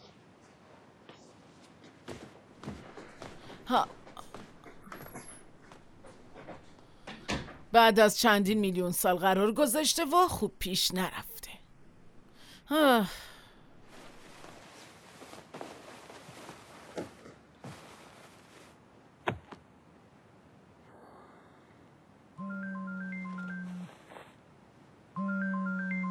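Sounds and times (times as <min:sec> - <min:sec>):
speech: 0:03.7 - 0:04.0, 0:07.7 - 0:11.3, 0:12.7 - 0:13.3
phone ringtone signalling an incoming call: 0:22.4 - 0:23.9, 0:25.2 - 0:26.0.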